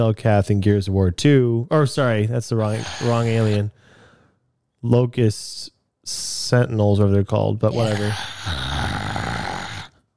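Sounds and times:
speech: 0.0 - 3.8, 4.8 - 8.6
voice imitating a zombie's raspy choking breath: 2.6 - 3.6, 7.7 - 10.0.

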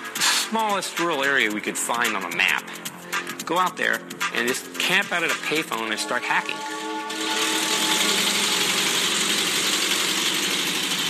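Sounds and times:
speech: 0.5 - 2.9, 3.5 - 6.7
Volkswagen van engine idling: 7.2 - 11.0.

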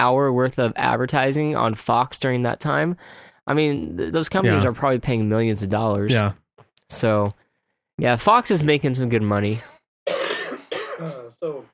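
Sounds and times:
speech: 0.0 - 7.4, 8.0 - 9.8, 11.0 - 11.7
person coughing: 10.1 - 11.5
person clearing throat: 10.1 - 11.6.

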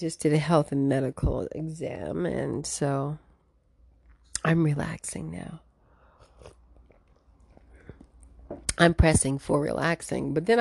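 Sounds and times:
speech: 0.0 - 3.2, 4.4 - 5.6, 8.5 - 10.5
sipping matcha green tea: 5.9 - 8.8
soft slurps: 6.1 - 8.4.

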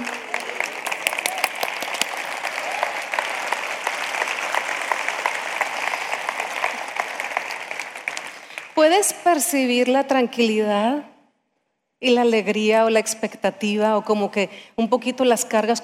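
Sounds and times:
audience clapping: 0.0 - 8.8
speech: 8.8 - 11.1, 12.0 - 15.8.

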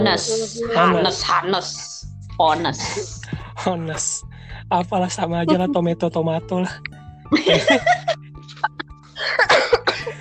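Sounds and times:
speech: 0.0 - 8.6
breaths: 3.2 - 3.6, 4.2 - 4.7
laughter: 5.4 - 5.9, 7.3 - 10.1
harsh coughs close to the mic: 9.2 - 10.1.

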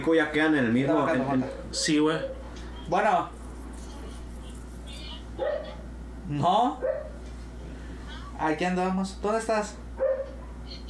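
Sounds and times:
speech: 0.0 - 3.4, 6.3 - 7.1, 8.4 - 10.1
low steady hum: 0.0 - 10.8
dog giving a short tonal bark: 1.4 - 2.5, 5.4 - 5.8, 6.8 - 7.2, 10.0 - 10.6.

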